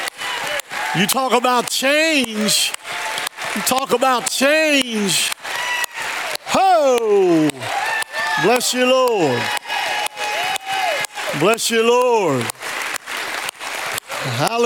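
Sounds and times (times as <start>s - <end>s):
large crowd clapping: 0.0s - 14.6s
speech: 0.9s - 2.9s, 3.6s - 5.4s, 6.6s - 7.7s, 8.4s - 9.6s, 11.4s - 12.6s, 14.4s - 14.6s
man's voice calling out loudly: 1.0s - 2.8s, 3.6s - 5.4s, 6.5s - 7.6s, 8.4s - 9.5s, 11.3s - 12.5s.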